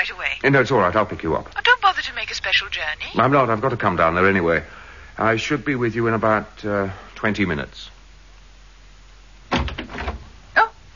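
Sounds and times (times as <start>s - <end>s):
speech: 0.1s - 8.0s
office door opening with a brief rattling scrape: 9.6s - 10.3s.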